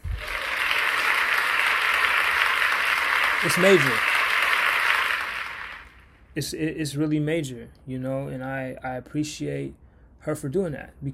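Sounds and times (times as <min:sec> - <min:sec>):
crowd applauding with many hands clapping: 0:00.0 - 0:06.1
speech: 0:03.4 - 0:04.1, 0:06.4 - 0:11.1.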